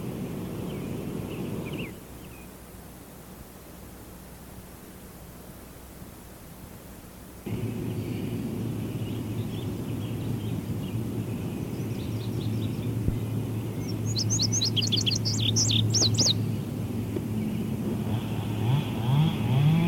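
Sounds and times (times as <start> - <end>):
bird singing from blackberry bushes: 0.0 - 2.6, 7.5 - 17.8
steady low rumbling hum: 0.0 - 19.8.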